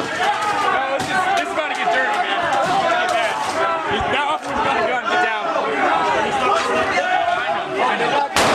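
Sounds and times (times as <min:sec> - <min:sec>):
crowd chatter and overlapping voices: 0:00.0 - 0:08.5
sharp gunshot: 0:08.4 - 0:08.5.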